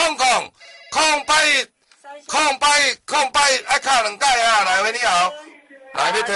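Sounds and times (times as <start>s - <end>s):
telephone ringing with an incoming call: 0.6s - 1.7s
speech: 1.0s - 6.3s.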